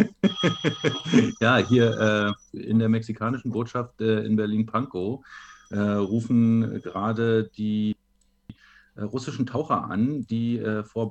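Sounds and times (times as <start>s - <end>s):
laughter: 0.0s - 1.4s
old-style rotary dial telephone bell ringing: 0.0s - 2.4s, 5.3s - 7.2s
speech: 0.4s - 8.0s, 9.0s - 11.0s.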